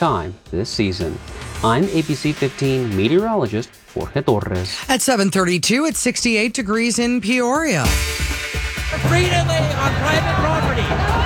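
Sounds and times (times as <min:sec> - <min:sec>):
speech: 0:00.0 - 0:11.1
protest crowd babble against border wall construction in southern Arizona: 0:09.4 - 0:11.2.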